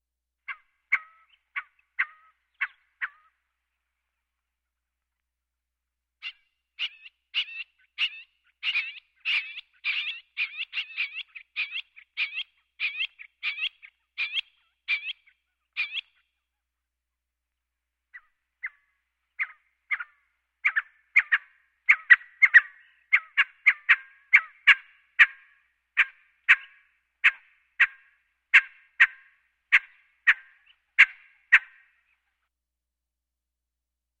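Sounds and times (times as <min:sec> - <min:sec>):
quail calling: 0:00.5 - 0:03.4, 0:06.2 - 0:16.3, 0:18.2 - 0:32.0.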